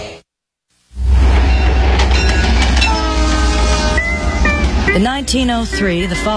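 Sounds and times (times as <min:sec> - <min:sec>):
train roaring past with heavy rumble: 0:00.9 - 0:06.3
rolling railroad cars clacking: 0:01.1 - 0:06.3
train whistle: 0:01.5 - 0:06.3
speech: 0:05.0 - 0:06.3.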